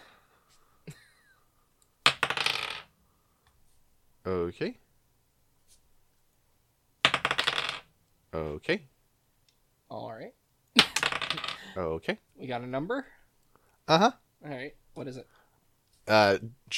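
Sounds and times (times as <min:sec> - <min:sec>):
dice clattering and tumbling across a hard surface: 0:02.0 - 0:02.9, 0:07.0 - 0:07.9, 0:10.9 - 0:11.6
speech: 0:04.3 - 0:04.8, 0:08.4 - 0:08.9, 0:11.8 - 0:13.2, 0:13.9 - 0:15.4, 0:16.1 - 0:16.7.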